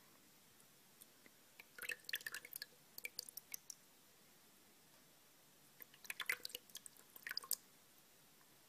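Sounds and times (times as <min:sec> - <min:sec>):
water dripping while rinsing hair: 0:01.0 - 0:03.9, 0:05.8 - 0:07.7.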